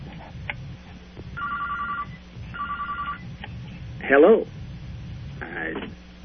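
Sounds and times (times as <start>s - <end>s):
low hum: 0.0s - 6.2s
telephone ringing with incoming call: 1.4s - 3.2s
speech: 4.1s - 4.6s.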